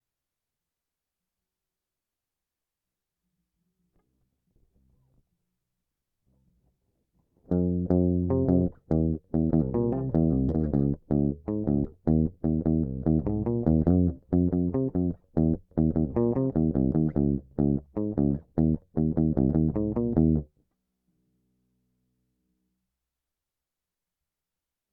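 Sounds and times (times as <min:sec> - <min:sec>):
lead guitar: 0:07.5 - 0:20.5.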